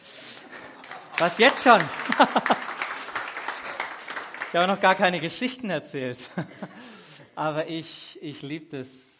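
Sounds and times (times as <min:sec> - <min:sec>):
laughter: 0:00.4 - 0:03.9, 0:06.2 - 0:06.9
audience clapping and applauding: 0:00.6 - 0:05.2
speech: 0:01.2 - 0:02.7, 0:04.5 - 0:09.1.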